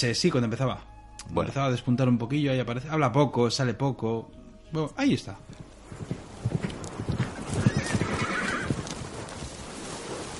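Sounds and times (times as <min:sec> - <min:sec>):
speech: 0:00.0 - 0:06.2
horse hooves clopping: 0:05.1 - 0:10.3
horse drawn-out neigh: 0:07.2 - 0:09.0.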